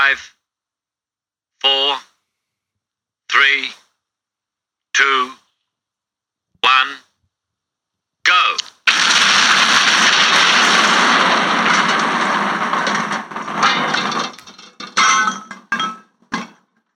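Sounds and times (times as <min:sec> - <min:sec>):
speech: 0:00.1 - 0:00.4, 0:01.6 - 0:02.1, 0:03.4 - 0:03.8, 0:05.0 - 0:05.4, 0:06.6 - 0:07.1, 0:08.3 - 0:08.7
debris clattering down and landing: 0:08.8 - 0:16.7
nitroglycerin blast blowing open a safe door on a stopped train: 0:08.9 - 0:14.9.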